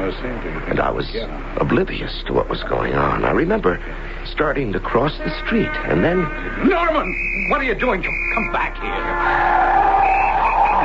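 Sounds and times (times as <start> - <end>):
speech: 0.1 - 10.8
car brakes screeching and tires skidding in slush and snow: 5.7 - 10.8.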